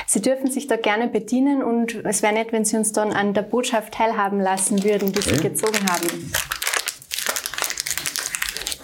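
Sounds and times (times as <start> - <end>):
speech: 0.1 - 6.6
fortune cookie plastic wrapper crinkling as it is opened: 4.6 - 8.8.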